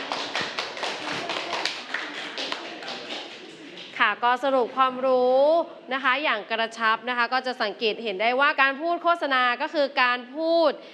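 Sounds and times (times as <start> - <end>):
classroom full of people applauding a presenter: 0.0 - 4.0
speech: 4.0 - 10.9.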